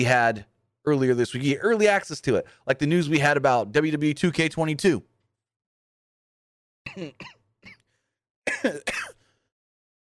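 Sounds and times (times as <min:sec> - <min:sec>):
speech: 0:00.0 - 0:05.1, 0:06.9 - 0:07.4, 0:08.6 - 0:09.1
person coughing: 0:06.9 - 0:07.9, 0:08.5 - 0:09.4.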